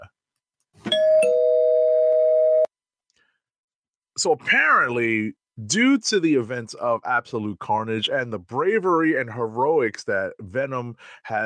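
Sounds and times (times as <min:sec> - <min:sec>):
two-note doorbell chime used as a spoiler-warning sound effect: 0:00.9 - 0:02.7
speech: 0:04.2 - 0:11.4.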